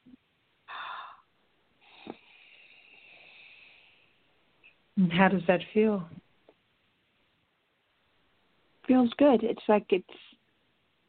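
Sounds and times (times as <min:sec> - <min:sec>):
deep breath drawn in: 0:00.7 - 0:04.2
speech: 0:05.0 - 0:06.2, 0:09.0 - 0:10.3.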